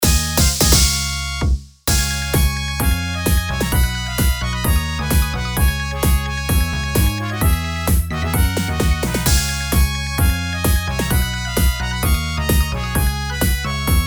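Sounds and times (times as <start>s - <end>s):
battle victory fanfare with background music: 0.0s - 14.0s.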